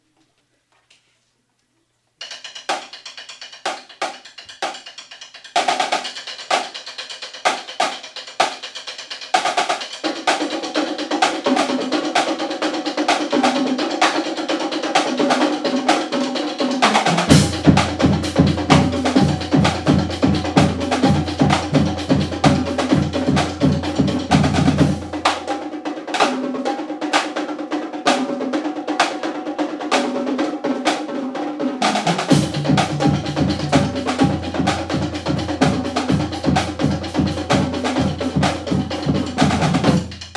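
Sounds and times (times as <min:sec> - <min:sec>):
drumline: 0:02.2 - 0:40.3
marching band: 0:09.4 - 0:40.3.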